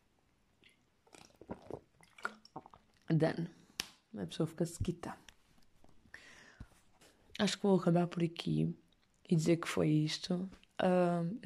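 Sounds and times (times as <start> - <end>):
person sipping and swallowing water: 0.6 - 3.1
speech: 3.1 - 3.6, 4.2 - 5.2, 7.4 - 11.4.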